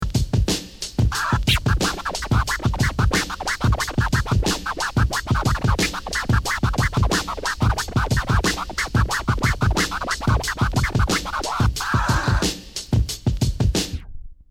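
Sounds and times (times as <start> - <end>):
drum beat: 0.0 - 14.2
record scratch: 1.0 - 12.6.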